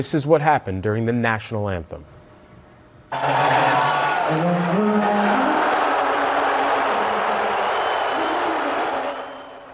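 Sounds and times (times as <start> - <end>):
speech: 0.0 - 2.2, 3.1 - 5.2
huge arena crowd at an NBA Finals game cheering in New York: 3.1 - 9.7.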